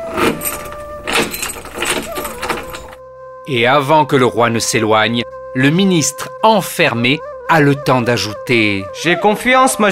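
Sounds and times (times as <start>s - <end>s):
key rattling and turning in the lock of a small abandoned house door: 0.1s - 3.0s
speech: 3.5s - 9.9s.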